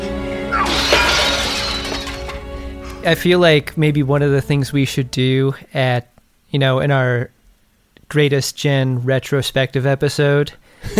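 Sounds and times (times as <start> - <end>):
low steady hum: 0.1 - 9.8
glass table shattering from a judo chop: 0.6 - 2.5
speech: 3.0 - 7.4, 8.0 - 10.9.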